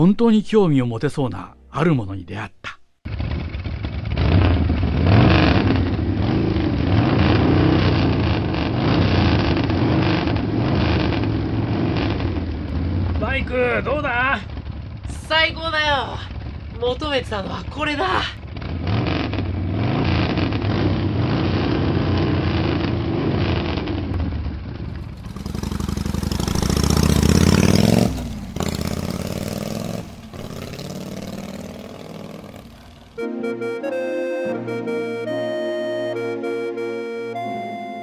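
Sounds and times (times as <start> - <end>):
speech: 0.0 - 2.8, 13.4 - 14.6, 15.3 - 18.4
music: 1.4 - 2.2, 33.2 - 38.0
motorcycle engine idling and revving: 3.0 - 33.2.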